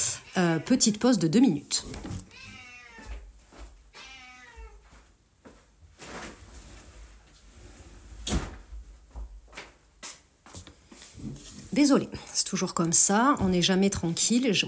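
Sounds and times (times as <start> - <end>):
speech: 0.4 - 2.4, 11.8 - 14.6
soft rustling: 1.7 - 9.6, 10.4 - 12.3
cat meowing to be let out: 2.2 - 3.3, 3.9 - 4.8.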